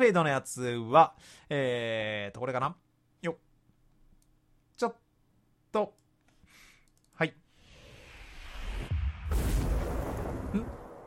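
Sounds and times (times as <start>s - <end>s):
speech: 0.0s - 3.5s, 4.8s - 5.0s, 5.7s - 6.0s, 7.2s - 7.4s
explosions in a promotional music video: 7.8s - 11.0s.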